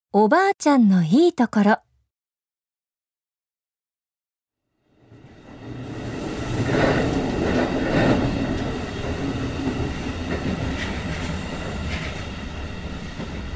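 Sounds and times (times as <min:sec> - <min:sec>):
speech: 0:00.1 - 0:01.8
train rolling along rails: 0:04.8 - 0:13.5.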